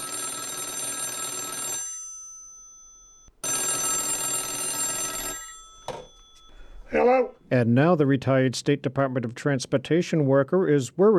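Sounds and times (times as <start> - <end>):
black landline wall phone ringing: 0.0 - 7.4
speech: 6.9 - 11.1.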